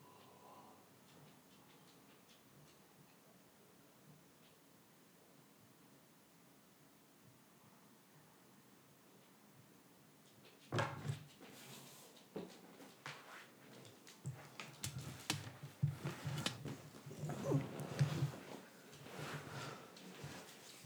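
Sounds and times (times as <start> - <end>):
dog shuffling and rustling behind a chair: 13.1 - 20.8
dog whimpering: 16.0 - 18.4.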